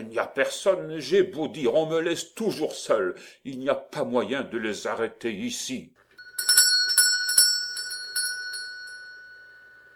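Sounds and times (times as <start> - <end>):
speech: 0.0 - 6.5
small hand bell shaken to call people: 6.2 - 9.9.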